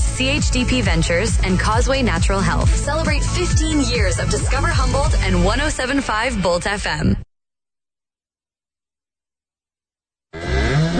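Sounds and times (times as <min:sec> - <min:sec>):
speech: 0:00.2 - 0:07.2
cow mooing: 0:10.4 - 0:10.9.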